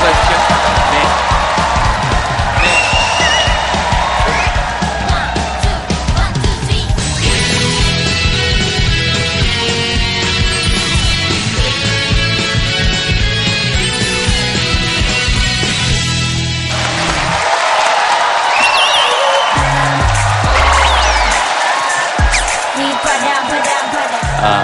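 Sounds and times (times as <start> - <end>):
band playing: 0.0 - 6.2, 7.1 - 17.4, 19.2 - 24.6
audience applause: 0.0 - 6.3, 16.6 - 24.6
shrill whistles: 2.6 - 4.6, 18.5 - 19.8, 20.5 - 21.5.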